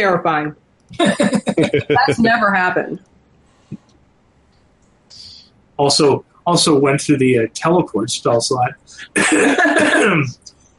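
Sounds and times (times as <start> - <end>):
speech: 0.0 - 3.1, 5.1 - 10.5
laughter: 1.0 - 2.5, 8.0 - 10.4
raspy cough: 9.1 - 10.4.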